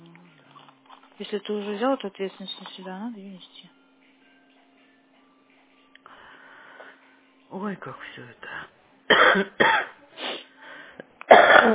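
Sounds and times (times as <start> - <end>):
speech: 1.2 - 3.8, 7.5 - 10.0
wheezy breath with a faint rasp: 6.0 - 7.2, 10.2 - 11.1
person coughing: 9.1 - 10.5, 11.3 - 11.7.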